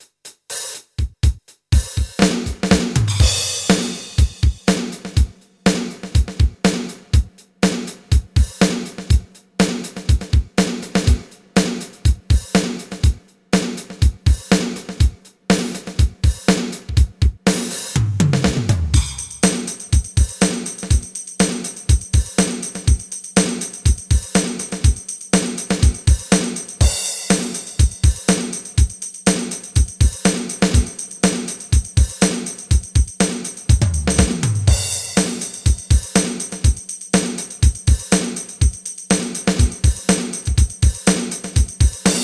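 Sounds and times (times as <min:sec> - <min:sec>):
pop 8 beat: 0:01.1 - 0:42.2.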